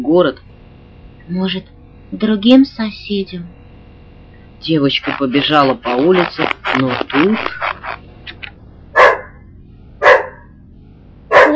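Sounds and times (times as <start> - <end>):
speech: 0.1 - 0.5, 1.3 - 3.6, 4.6 - 7.6
angry dog barking: 9.0 - 9.4, 10.0 - 10.5, 11.3 - 11.5
dog yapping: 9.0 - 9.4, 11.3 - 11.5.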